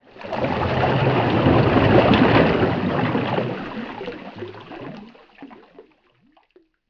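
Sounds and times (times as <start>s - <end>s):
underwater object movement: 0.0s - 6.6s
bubbles: 0.0s - 6.8s
waves against a boat: 0.1s - 5.1s
water splash: 0.1s - 6.6s.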